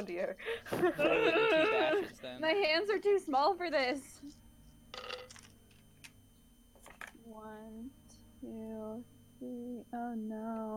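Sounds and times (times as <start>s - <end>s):
speech: 0.0s - 4.4s, 7.3s - 10.7s
laughter: 0.5s - 2.3s
large handful of dice rolled for a stealth check in a game: 5.0s - 5.5s.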